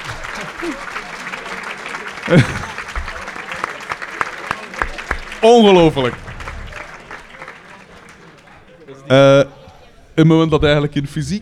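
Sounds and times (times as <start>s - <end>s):
audience applause at a prize presentation: 0.0s - 10.7s
laughter: 0.0s - 11.4s
speech: 0.6s - 1.0s, 2.3s - 2.7s, 5.4s - 6.2s, 9.1s - 9.5s, 10.2s - 11.4s.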